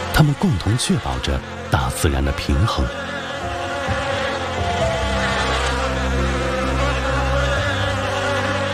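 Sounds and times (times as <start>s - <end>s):
speech: 0.2s - 3.1s
Chinese honeybees in traditional hives buzzing in Shennongjia, China: 2.8s - 8.7s.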